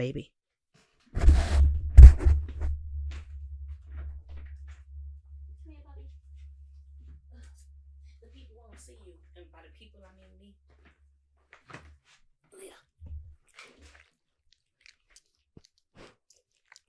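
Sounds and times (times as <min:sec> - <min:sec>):
speech-like sounds: 0:00.0 - 0:00.3, 0:05.7 - 0:06.1, 0:07.3 - 0:07.6, 0:08.2 - 0:10.6, 0:12.5 - 0:12.9
speech: 0:00.0 - 0:00.4
low rumble: 0:01.2 - 0:10.9
female dog munching and chewing: 0:13.4 - 0:16.8.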